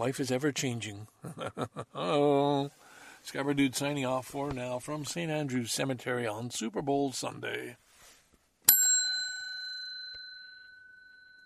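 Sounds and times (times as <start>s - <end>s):
speech: 0.0s - 7.8s
bicycle bell struck once: 8.7s - 11.4s.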